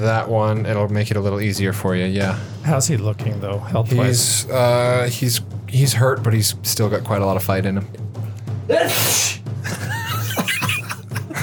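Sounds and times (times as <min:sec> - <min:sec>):
speech: 0:00.0 - 0:09.8
loud sneeze: 0:08.7 - 0:09.4
laughter: 0:09.6 - 0:11.4.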